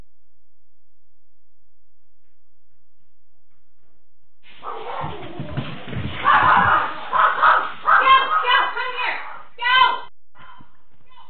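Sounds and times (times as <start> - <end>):
dog barking at a bear: 4.6 - 5.4, 6.2 - 10.7.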